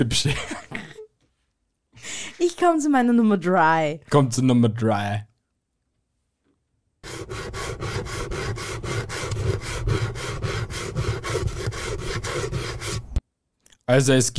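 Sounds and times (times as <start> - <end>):
speech: 0.0 - 0.6, 2.4 - 5.3, 13.9 - 14.3
kitchen grater being rubbed: 7.0 - 13.2.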